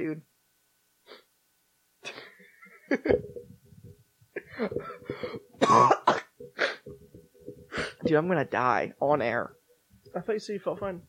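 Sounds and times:
speech: 0.1 - 0.3, 2.9 - 3.3, 8.1 - 11.0
person coughing harsh phlegmy coughs: 4.4 - 6.9.

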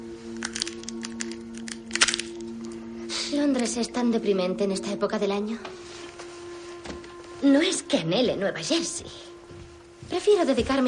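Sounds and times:
low steady hum: 0.0 - 10.8
young woman's hands cracking nuts: 0.4 - 2.8
speech: 3.4 - 5.8, 7.4 - 9.3, 10.2 - 10.8.

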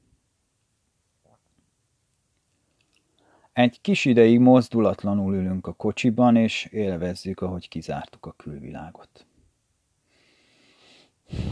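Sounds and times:
speech: 3.6 - 9.3, 11.3 - 11.5
snuffling breathing through the nose: 10.6 - 11.5.

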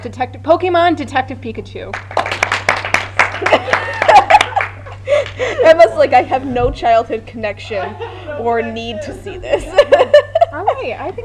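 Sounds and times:
speech: 0.0 - 2.2, 3.4 - 3.9, 5.1 - 11.2
small audience applauding: 1.9 - 5.4
people chuckling: 3.3 - 6.0, 7.7 - 10.7
murmuring voices: 5.6 - 11.2.

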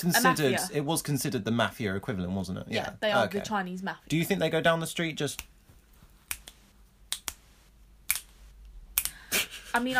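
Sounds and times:
speech: 0.0 - 5.5, 9.8 - 9.9
finger snaps made with one hand: 6.3 - 7.4, 8.9 - 9.2.

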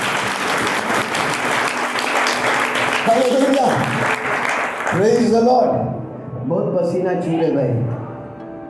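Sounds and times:
crowd applauding loudly: 0.0 - 5.5
speech: 3.1 - 4.0, 5.0 - 8.0.

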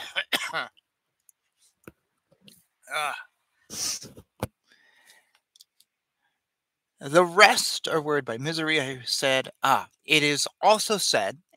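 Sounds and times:
breathy coughs: 0.0 - 0.7
speech: 0.2 - 0.8, 2.9 - 3.9, 7.0 - 11.5
soft clicks and small mouth noises: 2.9 - 4.4.

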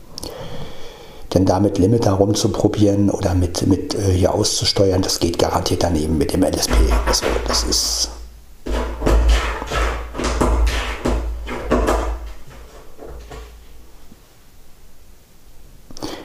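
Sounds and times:
speech: 1.3 - 8.2
cupboard door rattling and knocking as a tomcat plays with it: 6.6 - 7.8, 8.7 - 13.5.

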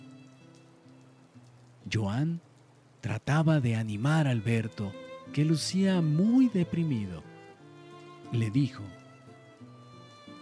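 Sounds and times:
light drizzle of fine drops pattering on a surface: 0.0 - 10.3
speech: 1.8 - 7.3, 8.3 - 9.0.

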